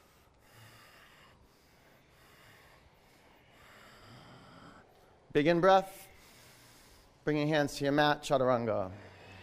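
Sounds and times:
ujjayi breathing during a yoga flow: 0:00.0 - 0:05.2, 0:06.0 - 0:07.2, 0:08.8 - 0:09.4
speech: 0:05.4 - 0:06.0, 0:07.2 - 0:09.1.

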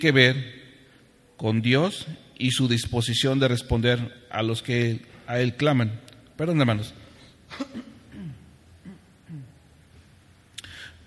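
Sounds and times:
speech: 0:00.0 - 0:00.6, 0:01.4 - 0:07.9
person coughing: 0:07.5 - 0:09.6
throat clearing: 0:07.5 - 0:09.6.

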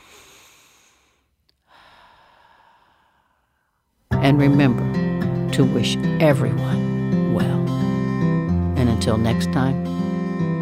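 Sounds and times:
deep breath with a long airy inhale: 0:00.0 - 0:03.9
speech: 0:04.3 - 0:05.0, 0:05.6 - 0:07.9, 0:09.0 - 0:10.5.

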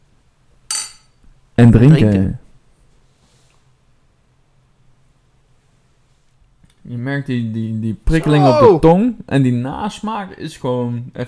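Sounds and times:
glasses clinking in a toast during a tasting of a spicy mango drink: 0:00.7 - 0:01.2
speech: 0:01.6 - 0:02.4, 0:06.9 - 0:11.2.

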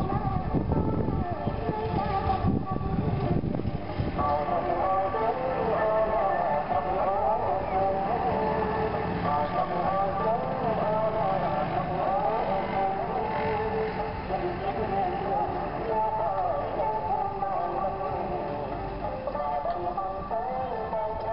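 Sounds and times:
low engine rumble: 0:00.0 - 0:21.3
recorded music with female and male singing at an outdoor riverside restaurant: 0:00.0 - 0:21.3
voices and chatter: 0:00.7 - 0:21.3.

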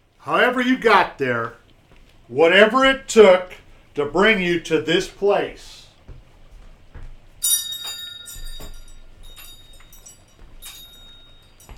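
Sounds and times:
speech: 0:00.2 - 0:01.6, 0:02.3 - 0:05.8
Christmas bells ringing in overlapping peals: 0:07.4 - 0:11.7.

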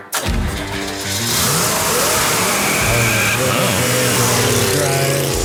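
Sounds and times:
muscle car engine revving: 0:00.1 - 0:05.4.

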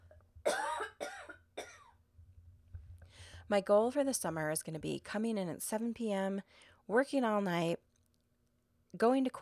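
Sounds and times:
person coughing harshly: 0:00.5 - 0:01.9
speech: 0:03.5 - 0:07.8, 0:08.9 - 0:09.4.

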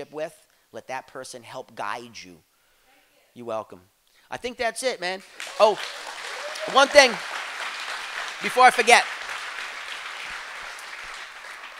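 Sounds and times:
speech: 0:00.0 - 0:02.5, 0:03.4 - 0:07.4, 0:08.4 - 0:09.2
audience applauding: 0:05.2 - 0:11.7.

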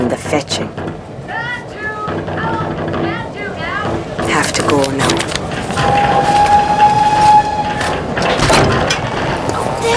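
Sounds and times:
train rumbling into a station: 0:00.0 - 0:09.9
speech: 0:00.1 - 0:01.0, 0:04.4 - 0:06.0
thin high train brake squeal: 0:05.8 - 0:07.9.

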